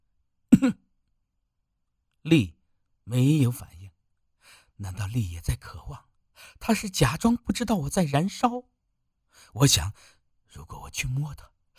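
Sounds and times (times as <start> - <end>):
deliberate dry cough: 0.5 - 0.9
speech: 0.6 - 0.8, 2.3 - 3.8, 4.8 - 8.7, 9.4 - 11.7.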